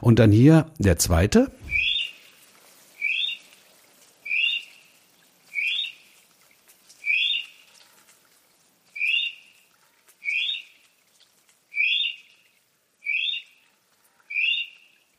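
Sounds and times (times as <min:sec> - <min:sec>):
speech: 0:00.0 - 0:01.6
North Island brown kiwi giving shrill rising whistled calls: 0:01.6 - 0:02.2, 0:03.0 - 0:03.5, 0:04.2 - 0:04.8, 0:05.5 - 0:06.0, 0:07.0 - 0:07.6, 0:08.9 - 0:09.6, 0:10.2 - 0:10.8, 0:11.7 - 0:12.3, 0:13.0 - 0:13.6, 0:14.3 - 0:14.9.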